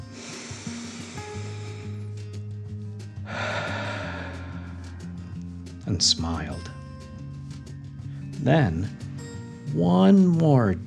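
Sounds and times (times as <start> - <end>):
deep breath in and out during a children's guided meditation: 0.0 - 2.1, 3.2 - 5.5
soft steady music: 0.0 - 10.8
speech: 5.9 - 6.8, 8.4 - 9.0, 9.7 - 10.8.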